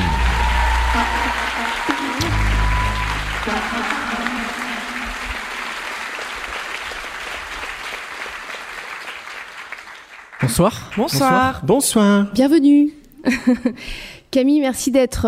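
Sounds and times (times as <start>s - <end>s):
audience applauding to welcome two guests: 0.0s - 11.6s
speech: 10.5s - 15.2s.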